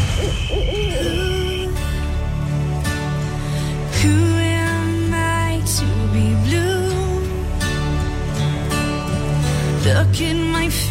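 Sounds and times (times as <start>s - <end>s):
wavering hooting calls: 0.0s - 1.9s
steady sustained tones: 0.0s - 3.3s
dense continuous musical backdrop: 0.0s - 10.8s.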